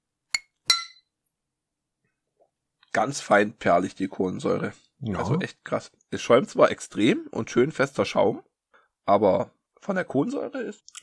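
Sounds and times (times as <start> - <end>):
glasses clinking in a toast: 0.4 - 1.0
speech: 2.9 - 11.0.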